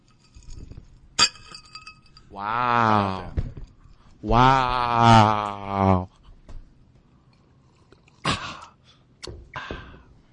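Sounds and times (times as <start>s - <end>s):
glasses clinking together with a ringing tone: 0.0s - 2.3s
speech: 2.3s - 3.4s, 4.2s - 6.1s.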